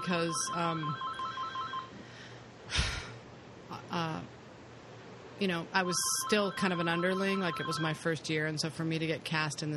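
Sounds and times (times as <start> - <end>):
speech: 0.0 - 1.1, 3.7 - 4.4, 5.4 - 9.7
phone ringtone: 0.0 - 2.0, 5.9 - 8.0
soft breathy noises: 1.9 - 3.2.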